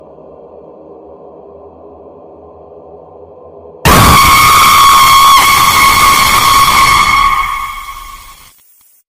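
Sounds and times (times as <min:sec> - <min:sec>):
dangerous horror movie sound ringtone: 0:03.8 - 0:08.3.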